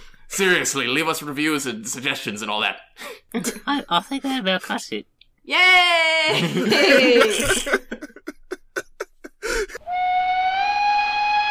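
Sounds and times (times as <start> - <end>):
speech: 0.4 - 8.0
laughter: 6.3 - 9.8
steam locomotive whistle: 9.8 - 11.5.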